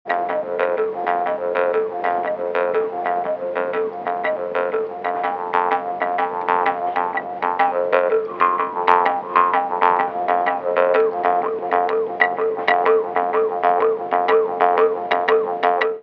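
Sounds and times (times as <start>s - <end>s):
bamboo jew's harp twanging: 0.1s - 16.0s.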